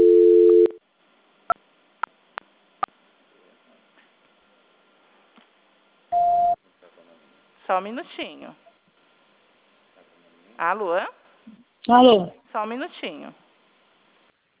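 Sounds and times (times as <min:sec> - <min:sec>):
steady low telephone tone during call transfer: 0:00.0 - 0:00.8
speech: 0:07.7 - 0:08.7, 0:10.6 - 0:13.4.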